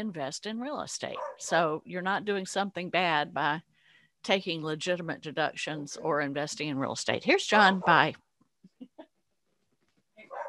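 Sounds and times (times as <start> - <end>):
speech: 0.0 - 8.2
dog barking outside the window: 1.1 - 1.5, 10.2 - 10.4.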